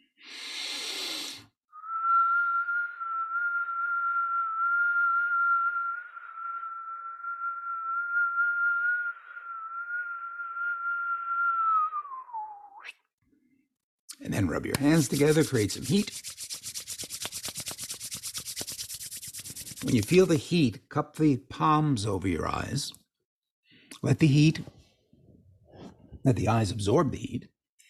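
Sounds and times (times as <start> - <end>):
sharp breathy inhale: 0.0 - 1.6
long whistled note on a deep exhale: 1.7 - 12.9
speech: 14.2 - 16.3, 19.8 - 23.0, 24.0 - 24.8, 26.3 - 27.5.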